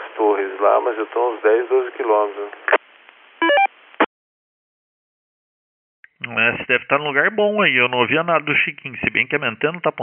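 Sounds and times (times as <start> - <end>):
low hiss of radio static: 0.0 - 4.1
speech: 0.2 - 2.7, 6.2 - 10.0
brief crackle of noise: 1.8 - 4.1
steady beeping electronic radio interference tones: 3.4 - 3.7.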